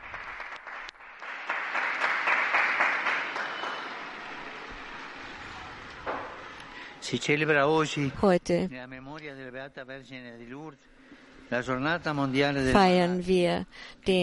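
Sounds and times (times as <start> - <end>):
large crowd applauding canonization of a new Argentine saint: 0.0 - 6.5
speech: 7.1 - 14.2.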